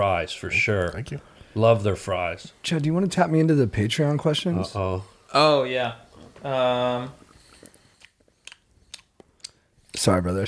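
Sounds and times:
speech: 0:00.0 - 0:07.2, 0:10.0 - 0:10.4
person chewing close to the microphone: 0:07.2 - 0:09.7.

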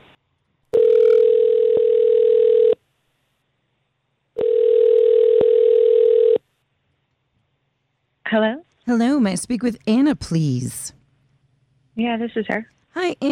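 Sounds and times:
telephone ringback tone while a call connects: 0:00.8 - 0:02.8, 0:04.4 - 0:06.4
speech: 0:08.3 - 0:11.0, 0:12.0 - 0:13.2.

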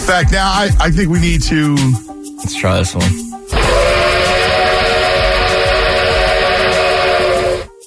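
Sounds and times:
speech: 0:00.1 - 0:03.8
steam train whistle blast with a breathy hiss: 0:03.5 - 0:07.8.

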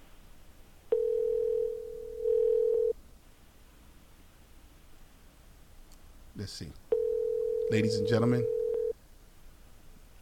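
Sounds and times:
phone line ringback tone on an outgoing call: 0:00.9 - 0:03.0, 0:06.9 - 0:08.9
speech: 0:06.4 - 0:06.9, 0:07.7 - 0:08.6.

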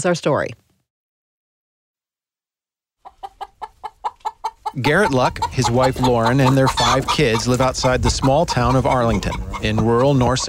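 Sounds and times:
speech: 0:00.0 - 0:00.6, 0:04.7 - 0:10.4
backyard hen clucking: 0:03.0 - 0:10.4.

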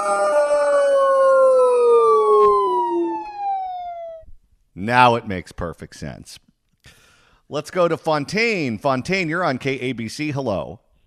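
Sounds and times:
police car siren wailing: 0:00.0 - 0:04.3
speech: 0:04.8 - 0:10.8.

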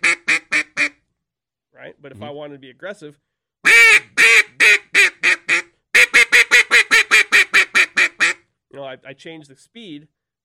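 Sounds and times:
single quacks blown on a duck call: 0:00.0 - 0:01.0, 0:03.6 - 0:08.4
speech: 0:02.0 - 0:04.2, 0:08.9 - 0:10.4.

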